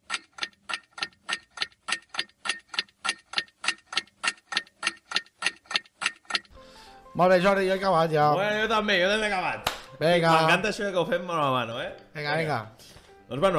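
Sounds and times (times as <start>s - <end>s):
clock ticking: 0.0s - 6.6s
speech: 7.2s - 13.5s.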